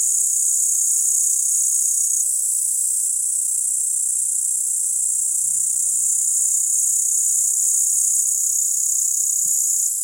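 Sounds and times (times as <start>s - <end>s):
upland green bush-cricket singing a shrill trill: 0.0s - 10.0s.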